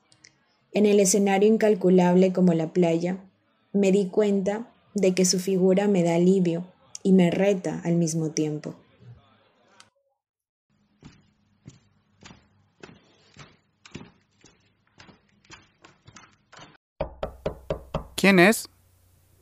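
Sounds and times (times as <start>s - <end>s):
speech: 0.7s - 8.8s, 18.2s - 18.7s
sharp knocks on a door: 17.0s - 18.2s.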